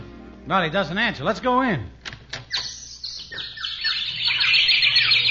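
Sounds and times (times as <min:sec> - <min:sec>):
speech: 0:00.5 - 0:02.0
chorus of many birds chirping and twittering: 0:02.4 - 0:05.2.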